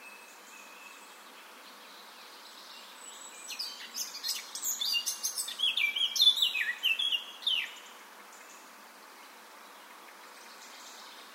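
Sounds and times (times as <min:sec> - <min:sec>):
Eurasian blackcap Sylvia atricapilla singing: 0:03.4 - 0:07.8.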